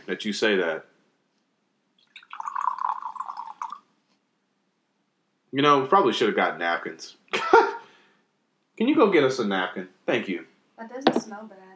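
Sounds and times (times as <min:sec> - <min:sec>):
speech: 0:00.1 - 0:00.9, 0:05.5 - 0:07.7, 0:08.8 - 0:11.7
liquid pouring with a bubbly gurgle: 0:02.0 - 0:03.9.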